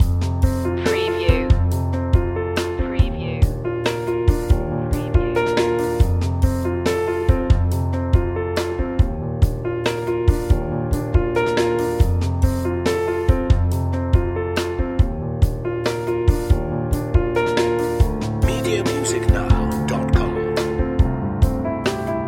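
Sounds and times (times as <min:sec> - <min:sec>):
acoustic mood music loop: 0:00.0 - 0:22.2.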